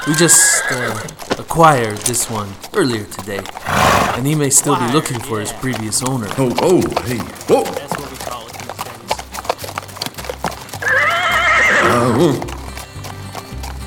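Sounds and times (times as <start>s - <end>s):
horse whinnying: 0.0s - 1.2s, 3.5s - 5.6s, 10.7s - 12.7s
speech: 0.0s - 8.1s, 12.1s - 12.5s
horse hooves clip-clopping: 0.0s - 13.8s.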